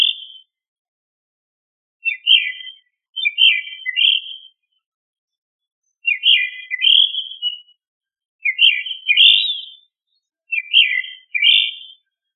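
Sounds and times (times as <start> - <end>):
bird singing clear whistled warbling notes: 0.0 - 0.5, 2.0 - 4.8, 5.8 - 7.8, 8.4 - 12.3.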